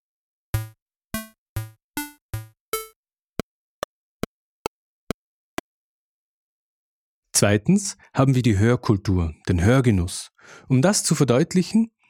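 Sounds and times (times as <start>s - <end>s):
computer-game-style melody in bright synthetic tones: 0.6s - 2.9s
speech: 7.4s - 12.0s.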